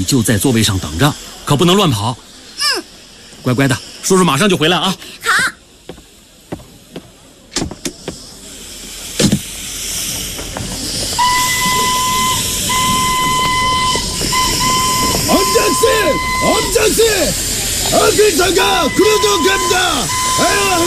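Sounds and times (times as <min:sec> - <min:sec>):
speech: 0:00.0 - 0:05.4, 0:18.2 - 0:20.8
steam train hissing: 0:00.0 - 0:20.8
steam train whistle: 0:11.2 - 0:20.8.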